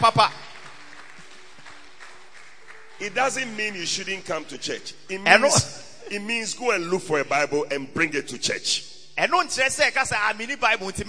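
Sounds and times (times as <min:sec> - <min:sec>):
speech: 0:00.0 - 0:00.4, 0:03.0 - 0:11.0
audience clapping in church: 0:00.0 - 0:04.7.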